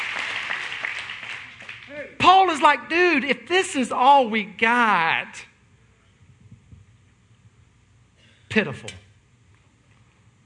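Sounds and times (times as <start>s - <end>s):
audience clapping: 0.0s - 2.1s
speech: 2.0s - 5.5s, 8.5s - 9.0s.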